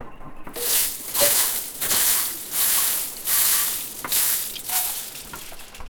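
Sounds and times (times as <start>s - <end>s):
washing vegetables in a basket: 0.5s - 5.9s.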